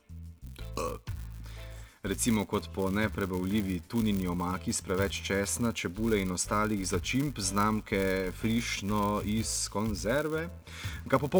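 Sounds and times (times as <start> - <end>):
loud drawn-out throaty burp: 0.6 - 1.8
speech: 2.0 - 11.3.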